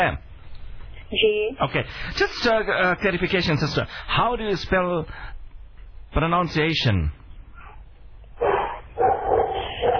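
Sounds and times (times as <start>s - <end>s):
speech: 0.0s - 0.3s, 1.1s - 5.3s, 6.1s - 7.2s
dog barking loudly: 8.4s - 9.9s.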